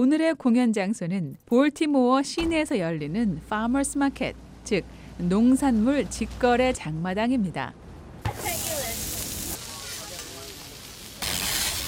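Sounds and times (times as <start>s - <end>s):
speech: 0.0s - 7.8s
faint chatter: 8.2s - 11.0s
food frying on a hot food truck grill at a farmers market in Baltimore: 8.3s - 11.8s.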